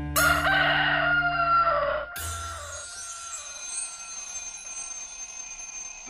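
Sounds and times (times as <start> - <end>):
rooster crowing: 0.2 - 3.5.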